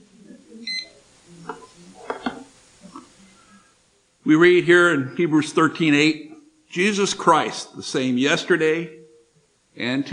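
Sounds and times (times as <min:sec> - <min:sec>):
faint murmur: 0:00.0 - 0:10.1
electronic timer beeps: 0:00.6 - 0:01.0
speech: 0:04.3 - 0:09.0, 0:09.8 - 0:10.1.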